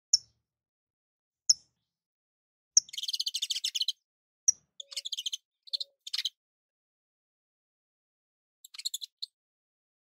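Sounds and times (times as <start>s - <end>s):
Portuguese domestic canary chirping: 2.8s - 6.4s, 8.6s - 9.4s.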